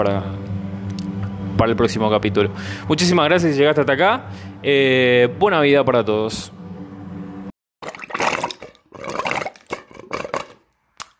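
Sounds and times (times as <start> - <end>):
speech: 0.0 - 0.4, 1.6 - 6.6
water pouring until it runs out: 7.8 - 10.7.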